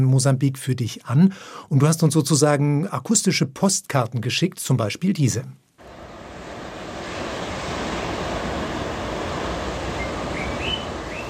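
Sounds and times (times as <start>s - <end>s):
speech: 0.0s - 5.6s
steady loud rushing roar: 5.8s - 11.2s
faint high bird chirps: 10.0s - 11.2s.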